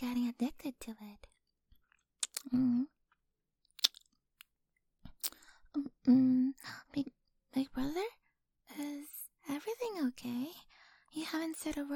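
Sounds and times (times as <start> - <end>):
speech: 0.0 - 1.3, 2.5 - 2.9, 6.1 - 8.2, 8.8 - 11.9
wet mouth clicks and smacks eating a sweet candy-like treat: 1.9 - 2.5, 3.7 - 4.5, 5.1 - 5.4.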